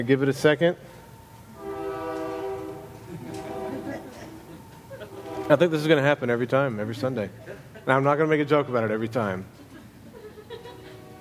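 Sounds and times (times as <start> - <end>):
speech: 0.0 - 0.9, 5.5 - 9.6
faint voices: 0.0 - 11.1
rail cars rolling by: 0.0 - 11.1
passing train horn: 0.9 - 6.4, 10.6 - 11.1
laughter: 2.3 - 11.1.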